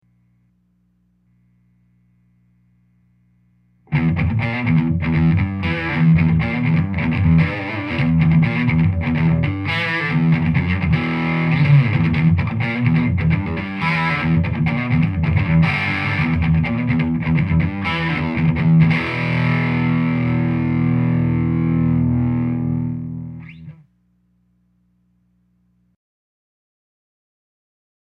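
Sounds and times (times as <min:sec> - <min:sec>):
Telecaster electric guitar on neck pickup with high grind: 0:03.9 - 0:23.8.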